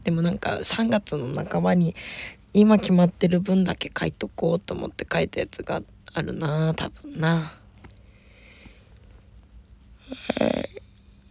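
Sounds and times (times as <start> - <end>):
speech: 0.1 - 7.6, 10.1 - 10.8
person yawning with a short sigh: 10.0 - 10.8.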